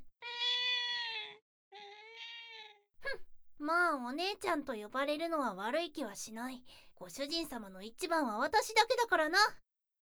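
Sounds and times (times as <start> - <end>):
stray cat meowing: 0.2 - 2.8
speech: 3.6 - 9.6.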